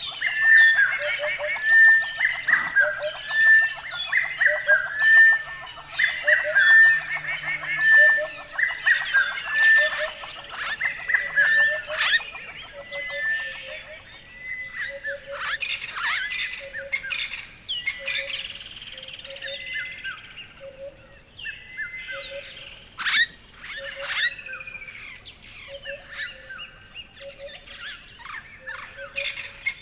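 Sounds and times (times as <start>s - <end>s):
chorus of many birds calling and chirping in summer: 0.0s - 29.7s.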